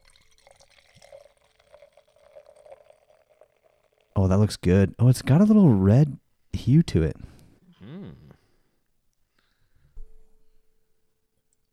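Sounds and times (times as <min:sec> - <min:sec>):
beer pouring into a glass with gurgling and fizzing: 0:00.0 - 0:04.3
speech: 0:04.2 - 0:07.2.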